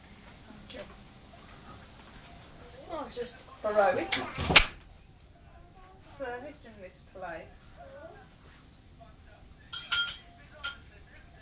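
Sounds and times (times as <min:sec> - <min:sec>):
faint voices murmuring: 0:00.2 - 0:11.3
speech: 0:03.1 - 0:04.7, 0:06.4 - 0:08.3
dishes and cutlery clinking: 0:09.6 - 0:11.3.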